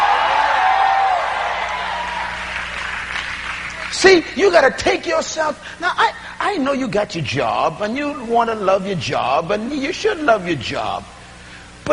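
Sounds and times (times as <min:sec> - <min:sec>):
crowd screaming and cheering: 0:00.0 - 0:03.9
speech: 0:04.0 - 0:11.2.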